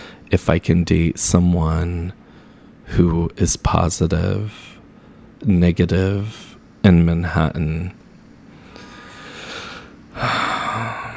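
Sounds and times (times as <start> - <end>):
deep breath: 0.0 - 0.3, 2.2 - 2.9, 8.5 - 11.1
speech: 0.4 - 2.2, 2.9 - 4.7, 5.4 - 8.0, 10.2 - 10.4.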